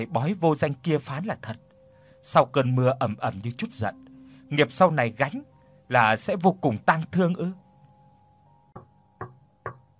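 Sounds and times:
speech: 0:00.0 - 0:07.6
knocking on the door of a private maternity room in a hospital: 0:08.8 - 0:09.9.

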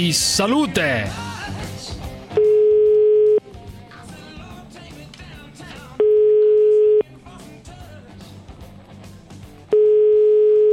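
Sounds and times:
speech: 0:00.0 - 0:01.6
telephone ringback tone while a call is being placed: 0:02.3 - 0:03.4, 0:06.0 - 0:07.0, 0:09.7 - 0:10.7.

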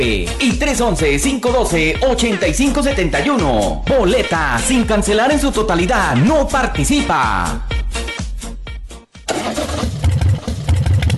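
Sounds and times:
speech: 0:00.0 - 0:08.1
old motorcycle engine cranked and starting: 0:09.3 - 0:11.1.

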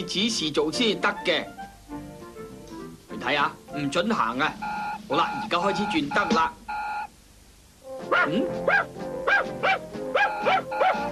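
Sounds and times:
speech: 0:00.0 - 0:01.6, 0:03.2 - 0:06.6, 0:08.1 - 0:11.1
cartoon dog barking with high-pitched yips: 0:08.1 - 0:11.1.

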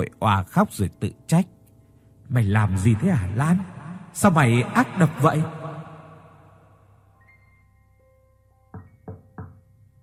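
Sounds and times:
speech: 0:00.0 - 0:01.6, 0:02.3 - 0:05.6
soft sustained musical tones: 0:00.0 - 0:09.0
knocking on a car door: 0:08.8 - 0:09.6.

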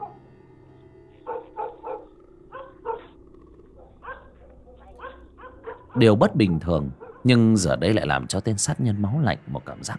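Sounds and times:
pack of dogs barking loudly in a village: 0:01.2 - 0:07.5
speech: 0:06.0 - 0:09.9.

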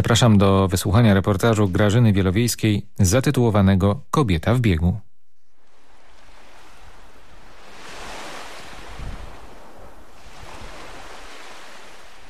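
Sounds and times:
speech: 0:00.0 - 0:05.1
sea waves murmuring along a beach: 0:05.6 - 0:12.2
wind buffeting: 0:05.6 - 0:12.2.

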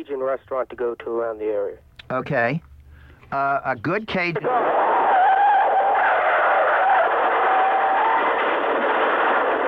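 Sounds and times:
speech: 0:00.0 - 0:02.7, 0:03.3 - 0:04.8
car skidding with tire screech over a phone line: 0:04.4 - 0:09.6.

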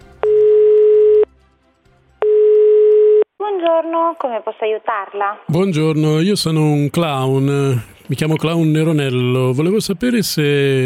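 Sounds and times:
telephone call tone beeps: 0:00.2 - 0:01.3, 0:02.2 - 0:03.2
speech: 0:03.6 - 0:10.8.

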